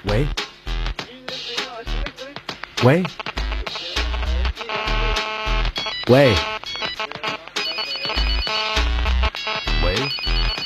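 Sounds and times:
speech: 0.0s - 0.5s, 2.8s - 3.2s, 6.1s - 6.5s
electronic phone ringtone melody with deep bass pulses: 3.4s - 10.6s.

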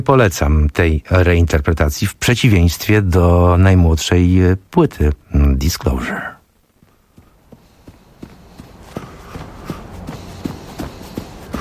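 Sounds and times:
speech: 0.0s - 6.4s
running footsteps: 6.4s - 11.6s.

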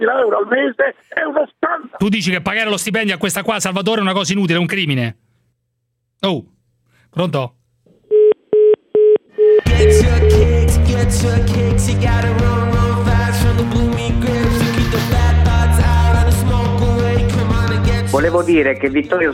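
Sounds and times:
speech: 0.0s - 5.2s, 6.2s - 7.6s, 9.6s - 15.2s, 18.2s - 19.3s
telephone line drop beeps on a radio call-in: 8.6s - 10.5s
loud dense music: 9.7s - 18.7s.

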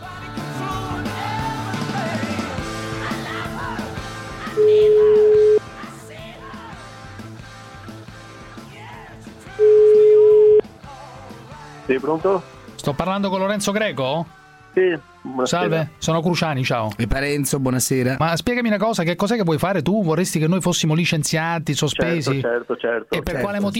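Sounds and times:
music: 0.0s - 23.7s
telephone ringback tone while a call is placed: 4.6s - 5.6s, 9.6s - 10.6s
speech: 12.0s - 23.7s.

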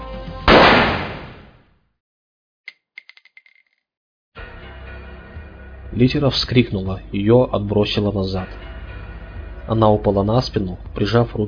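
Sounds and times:
pistol gunshot: 0.5s - 1.5s
speech: 5.9s - 8.6s, 9.7s - 11.4s.

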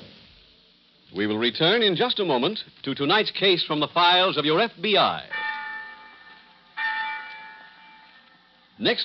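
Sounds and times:
speech: 1.2s - 5.4s, 8.8s - 9.0s
college bell ringing: 5.3s - 8.9s.

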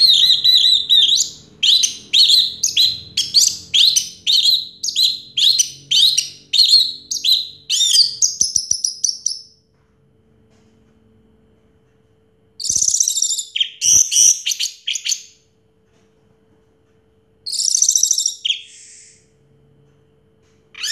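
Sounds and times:
orange-headed thrush song of rapid high scratchy and whistled notes: 0.0s - 9.5s, 12.6s - 15.3s, 17.5s - 19.2s.

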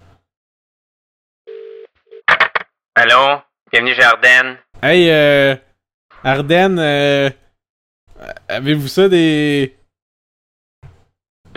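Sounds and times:
telephone ringback tone after dialing a business's number: 1.5s - 2.2s
speech: 3.0s - 5.6s, 6.2s - 7.4s, 8.2s - 9.8s.

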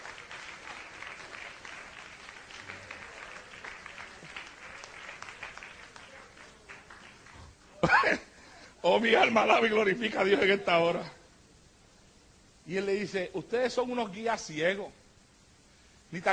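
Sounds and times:
church congregation applauding during a sermon: 0.0s - 7.9s
speech: 8.8s - 11.2s, 12.7s - 15.0s, 16.1s - 16.3s.

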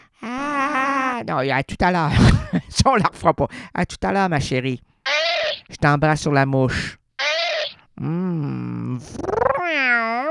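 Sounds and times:
speech: 1.2s - 4.9s, 5.7s - 7.0s, 8.0s - 9.8s
human voice imitating kitten meows: 5.1s - 5.7s, 7.2s - 10.2s.

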